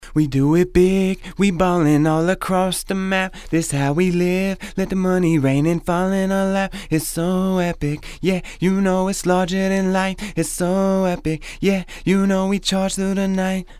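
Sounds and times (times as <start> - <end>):
dry vocals: 0.0 - 13.7.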